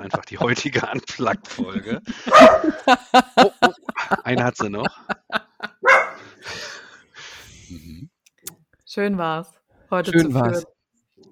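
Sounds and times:
speech: 0:00.0 - 0:05.4, 0:09.0 - 0:10.7
laughter: 0:00.0 - 0:07.0
dog barking: 0:02.3 - 0:02.9, 0:05.8 - 0:06.4
vocal noises: 0:07.4 - 0:08.2.

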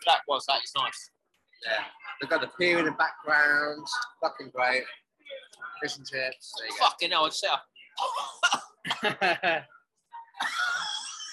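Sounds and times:
speech: 0:00.0 - 0:09.8, 0:10.4 - 0:10.8
person coughing harshly after swallowing chili: 0:08.0 - 0:09.2, 0:10.4 - 0:11.3
laughter: 0:08.9 - 0:09.8.

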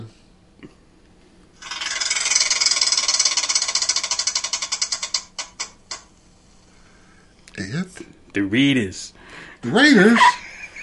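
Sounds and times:
prize wheel spinning and ticking: 0:01.6 - 0:06.1
speech: 0:08.4 - 0:10.4
laughter: 0:10.0 - 0:10.8.

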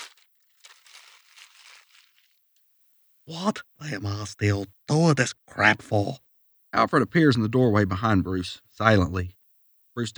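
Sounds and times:
paper torn from a pad: 0:00.0 - 0:02.4
speech: 0:03.3 - 0:06.2, 0:06.8 - 0:09.4, 0:10.0 - 0:10.1.

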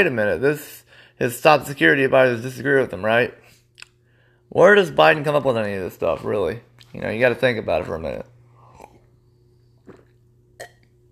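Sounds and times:
speech: 0:00.0 - 0:03.4, 0:04.5 - 0:08.3
low steady hum: 0:00.0 - 0:11.1
person sipping and swallowing a drink: 0:08.6 - 0:11.1.

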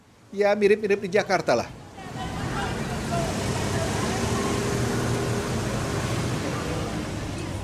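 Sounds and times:
busy city traffic roar: 0:00.0 - 0:07.6
speech: 0:00.3 - 0:01.8
crowd chatter: 0:01.7 - 0:07.6
engines droning: 0:01.8 - 0:07.6.

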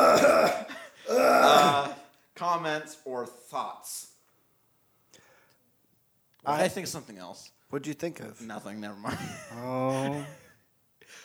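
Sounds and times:
throat-clearing coughs: 0:00.0 - 0:02.1
speech: 0:02.6 - 0:04.1, 0:06.4 - 0:10.4.

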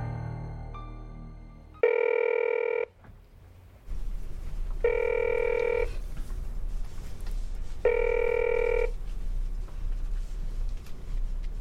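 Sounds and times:
phone ringing: 0:01.8 - 0:02.9, 0:04.8 - 0:06.0, 0:07.9 - 0:08.9
low hum: 0:01.8 - 0:11.5.

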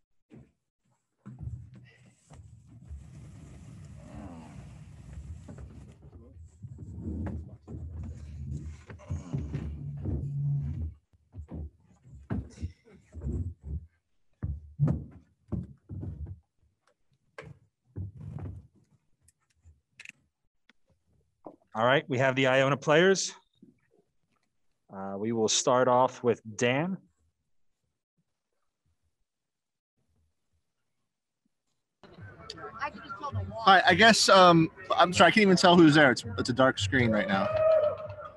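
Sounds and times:
chair knocking and bumping as it is pushed into place: 0:06.7 - 0:16.5
speech: 0:21.8 - 0:23.4, 0:25.5 - 0:27.1, 0:33.6 - 0:37.6.

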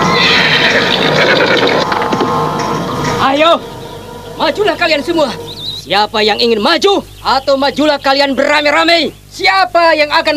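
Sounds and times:
horse neighing: 0:00.0 - 0:01.9
galloping hooves of a ridden horse: 0:00.0 - 0:03.2
speech: 0:03.4 - 0:03.8, 0:04.4 - 0:10.3.

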